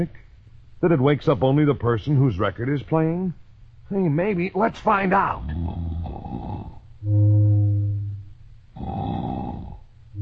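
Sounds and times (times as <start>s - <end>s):
speech: 0.0s - 0.2s, 0.8s - 5.8s, 7.0s - 7.3s
loud exaggerated snoring with a tonal whistle: 5.4s - 8.2s, 8.8s - 9.8s.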